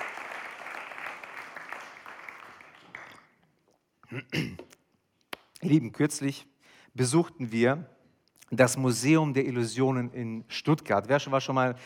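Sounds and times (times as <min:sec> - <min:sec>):
crowd applauding: 0:00.0 - 0:03.4
speech: 0:04.1 - 0:04.7, 0:05.6 - 0:11.8.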